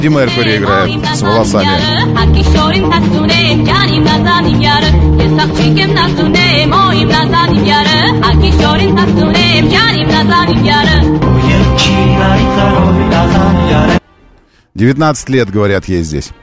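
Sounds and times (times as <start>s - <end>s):
speech: 0.0s - 14.0s, 14.8s - 16.4s
female vocal in a rock-pop rendition of a folk song: 0.2s - 11.2s.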